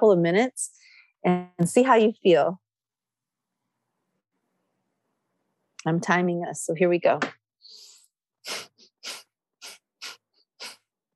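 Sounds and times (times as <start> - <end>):
speech: 0.0 - 2.6, 5.8 - 7.4
rapid forceful nasal breathing in a yoga breath-of-fire exercise: 7.6 - 11.1.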